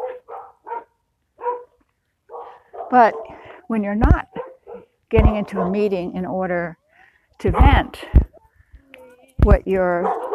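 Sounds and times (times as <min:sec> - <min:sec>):
neighborhood dogs barking: 0:00.0 - 0:06.0, 0:07.4 - 0:08.4, 0:09.9 - 0:10.3
speech: 0:02.9 - 0:04.3, 0:05.1 - 0:06.8, 0:07.4 - 0:08.2, 0:09.4 - 0:10.2.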